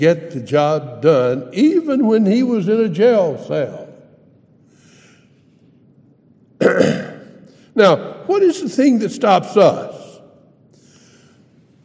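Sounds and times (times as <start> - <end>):
speech: 0.0 - 3.8, 6.6 - 7.0, 7.8 - 10.0
person coughing: 6.6 - 7.5.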